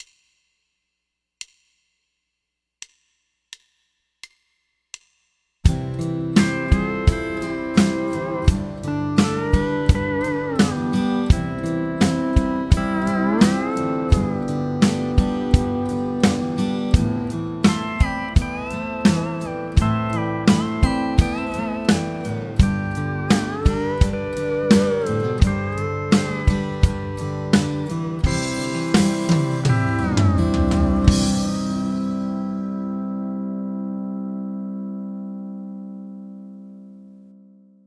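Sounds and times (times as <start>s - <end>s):
backing track at 85 BPM with ghost notes: 5.7s - 34.4s.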